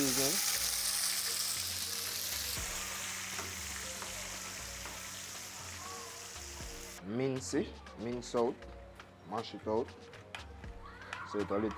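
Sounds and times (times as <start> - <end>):
oil sizzling and crackling in a pan as it heats: 0.0 - 7.0
speech: 7.1 - 10.2, 11.3 - 11.7.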